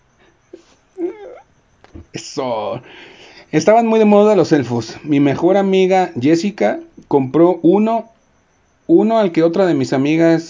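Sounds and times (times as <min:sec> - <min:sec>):
dog whimpering, begging for pan de muerto: 0:00.5 - 0:01.5
speech: 0:02.4 - 0:08.1, 0:08.9 - 0:10.4.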